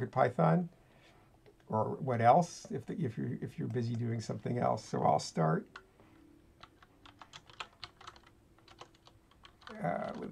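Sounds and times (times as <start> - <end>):
speech: 0.0 - 0.8, 1.7 - 5.8, 9.8 - 10.2
low steady hum: 0.0 - 10.2
typing quietly on a computer keyboard: 6.6 - 10.2.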